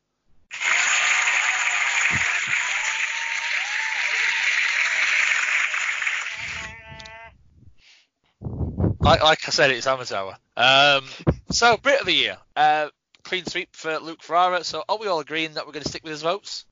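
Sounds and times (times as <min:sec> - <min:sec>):
applause: 0:00.5 - 0:07.1
warbling bleat-like sound: 0:06.1 - 0:07.4
speech: 0:09.1 - 0:16.7.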